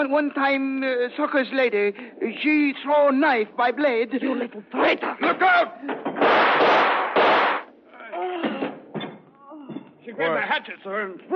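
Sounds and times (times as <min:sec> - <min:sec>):
speech: 0:00.0 - 0:06.4, 0:10.1 - 0:11.3
gunshots fired at a woman who threw a hatchet: 0:06.2 - 0:07.7.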